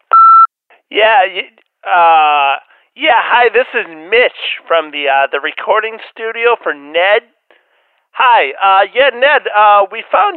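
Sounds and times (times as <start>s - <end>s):
electronic answering machine beep: 0.1s - 0.5s
speech: 0.9s - 7.4s, 8.2s - 10.3s.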